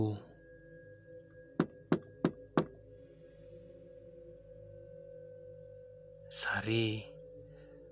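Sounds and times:
low steady hum: 0.0 - 7.9
mother knocking on a bedroom door: 1.6 - 2.7
speech: 6.4 - 7.1.

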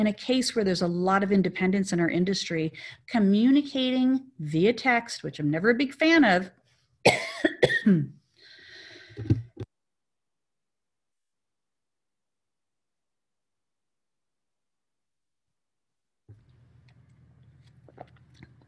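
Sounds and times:
speech: 0.0 - 8.2, 9.2 - 9.5
person coughing sharply: 7.1 - 8.2.

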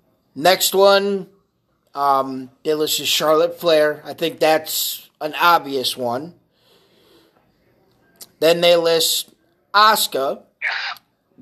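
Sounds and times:
speech: 0.4 - 1.3, 2.0 - 6.4, 8.4 - 11.0
person sneezing: 10.6 - 11.0.

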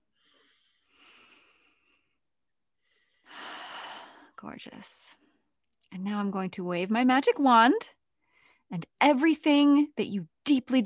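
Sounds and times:
deep breaths during a guided relaxation: 0.0 - 4.4
speech: 4.4 - 5.2, 5.9 - 8.0, 8.7 - 10.8.

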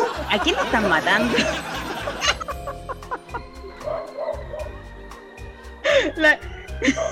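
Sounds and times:
laughter: 0.0 - 4.1
speech: 0.3 - 1.8, 6.1 - 7.1
several dogs barking loudly: 3.8 - 4.8.

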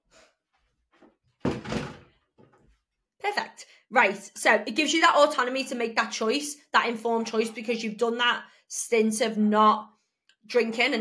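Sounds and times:
door pushed shut with a thud: 1.4 - 2.2
speech: 3.2 - 10.9.

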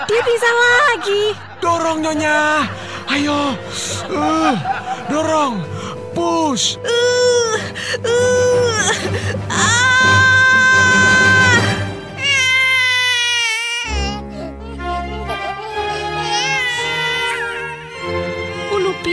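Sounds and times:
laughter: 0.0 - 5.9
speech: 0.0 - 10.2
newborn baby boy wailing just after birth: 6.8 - 18.2.

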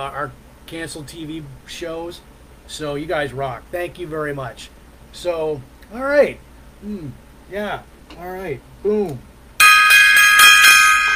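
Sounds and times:
speech: 0.0 - 9.3
metallic gong being struck and ringing: 9.6 - 11.1.

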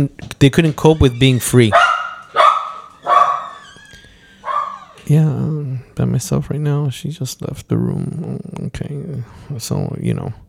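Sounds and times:
speech: 0.0 - 1.8, 5.1 - 10.4
dog barking: 1.7 - 3.7, 4.4 - 5.0.

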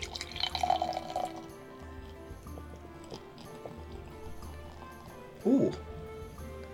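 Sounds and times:
thick dark stout beer pouring and glugging into a glass: 0.0 - 2.2.

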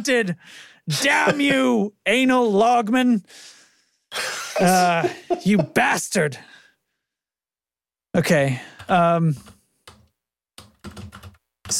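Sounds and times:
speech: 0.0 - 6.6, 8.2 - 9.6
laughter: 0.9 - 1.7, 4.5 - 6.0
typing on a computer keyboard: 8.8 - 11.7.

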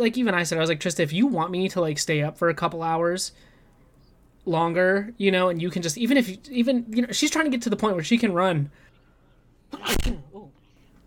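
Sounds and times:
speech: 0.0 - 3.5, 4.4 - 8.9, 9.7 - 10.6
loud sudden sneeze: 9.7 - 10.5.

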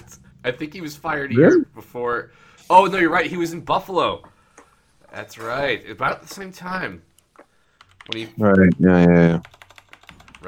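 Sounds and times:
speech: 0.4 - 4.3, 5.1 - 7.1, 8.0 - 9.6
person speaking or humming: 1.3 - 1.7, 8.4 - 9.4
loud computer keyboard clacking: 7.2 - 8.3, 9.4 - 10.4.

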